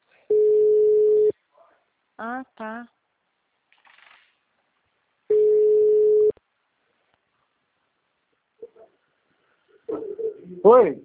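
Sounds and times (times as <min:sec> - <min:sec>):
telephone busy tone of a dropped phone call: 0:00.3 - 0:01.3, 0:05.3 - 0:06.3
speech: 0:02.2 - 0:03.0, 0:10.6 - 0:11.0.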